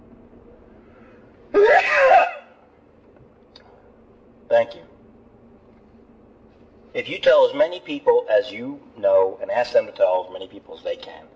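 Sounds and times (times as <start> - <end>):
person sneezing: 1.6 - 2.5
speech: 4.6 - 4.9, 7.0 - 11.3.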